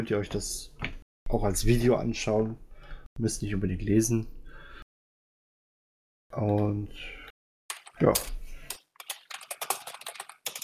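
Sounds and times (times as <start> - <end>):
speech: 0.0 - 4.4, 6.3 - 7.2, 8.0 - 8.4
rapid typing on a keyboard: 7.7 - 10.6.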